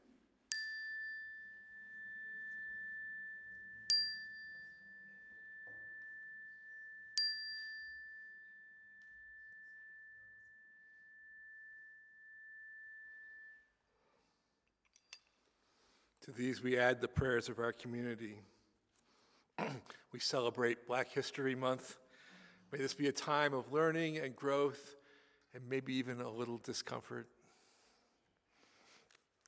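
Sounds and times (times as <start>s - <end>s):
bright chime struck in a sanctuary: 0.5s - 14.4s
speech: 16.2s - 18.5s, 20.1s - 22.0s, 22.7s - 27.4s.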